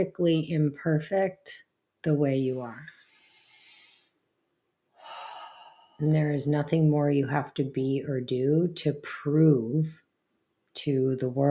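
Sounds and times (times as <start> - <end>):
speech: 0.0 - 3.0, 6.0 - 10.0, 10.8 - 11.5
deep breathing: 2.9 - 4.2, 5.0 - 6.1.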